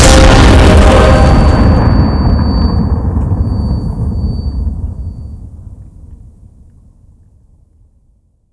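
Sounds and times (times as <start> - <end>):
holy explosion: 0.0 - 6.6.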